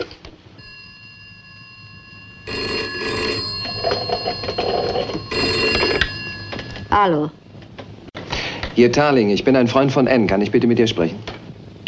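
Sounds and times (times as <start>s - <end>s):
telephone bell ringing in long metallic trills: 0.6s - 7.1s
speech: 4.2s - 5.5s, 7.0s - 7.4s, 8.8s - 11.3s.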